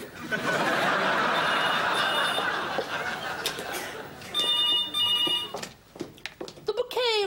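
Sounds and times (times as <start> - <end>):
people laughing: 0.0 - 4.4
landline telephone ringing: 0.8 - 3.0, 4.3 - 5.6.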